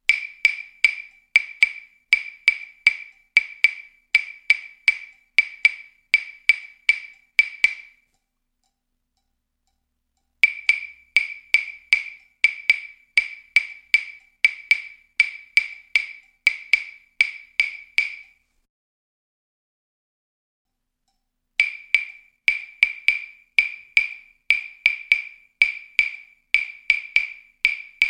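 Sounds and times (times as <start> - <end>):
clave rhythms: 0.0 - 8.0, 10.4 - 18.4, 21.6 - 28.0.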